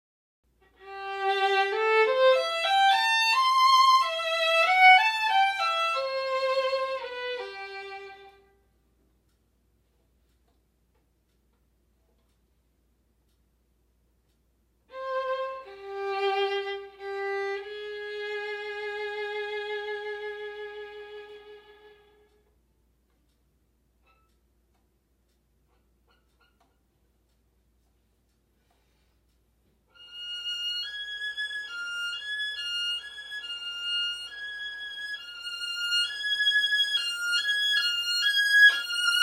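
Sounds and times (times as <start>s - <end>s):
violin playing classical piece: 0.6s - 8.5s, 14.9s - 22.3s, 29.9s - 39.2s.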